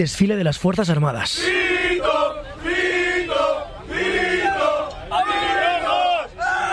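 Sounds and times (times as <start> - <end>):
speech: 0.0 - 2.8
soldiers chanting and cheering on a bus: 1.3 - 6.7.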